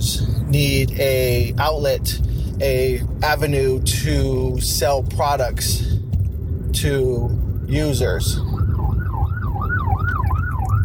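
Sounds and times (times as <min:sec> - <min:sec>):
heavy low rumble of road and engine noise: 0:00.0 - 0:10.8
speech: 0:00.5 - 0:06.0, 0:06.8 - 0:08.8
ambulance siren wailing: 0:07.3 - 0:10.8.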